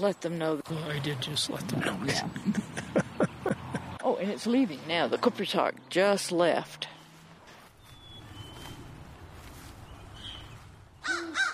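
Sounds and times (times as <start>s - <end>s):
speech: 0.0s - 2.9s, 4.2s - 6.9s
steady low rumble of outdoor noise: 0.6s - 11.1s
laughter: 1.8s - 4.0s
crow harassing an owl cawing: 11.0s - 11.5s.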